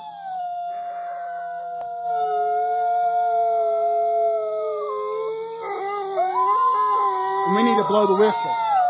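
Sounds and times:
wolves howling: 0:00.0 - 0:08.8
speech: 0:07.5 - 0:08.6.

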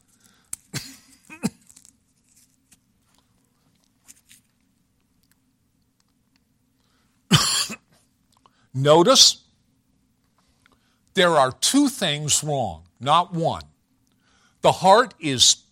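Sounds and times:
person coughing: 0:00.7 - 0:01.7, 0:07.3 - 0:07.9
speech: 0:08.8 - 0:09.4, 0:11.2 - 0:13.7, 0:14.6 - 0:15.6.

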